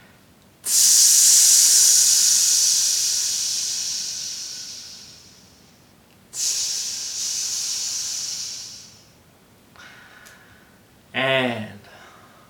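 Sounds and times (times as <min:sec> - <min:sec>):
voice making a snake-like sss hiss as a breathing exercise: 0:00.7 - 0:05.7, 0:06.4 - 0:09.1.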